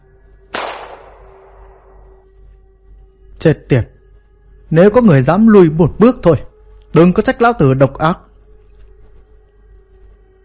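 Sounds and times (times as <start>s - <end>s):
quiet low hum: 0.0s - 10.4s
single gunshot fired into the sky: 0.5s - 2.0s
speech: 3.4s - 3.9s, 4.7s - 8.3s.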